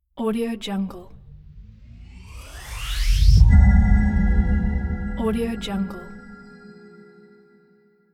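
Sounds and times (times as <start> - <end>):
cinematic tone: 1.1 - 7.6.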